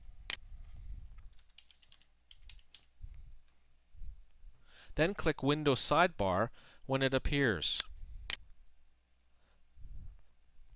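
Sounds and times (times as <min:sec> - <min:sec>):
typing on a computer keyboard: 0:01.2 - 0:02.9
speech: 0:05.0 - 0:07.9.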